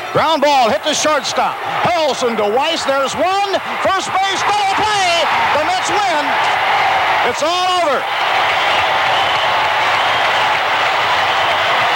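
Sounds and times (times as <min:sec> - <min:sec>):
huge stadium crowd roaring and cheering: 0:00.0 - 0:11.9
speech: 0:00.1 - 0:09.1.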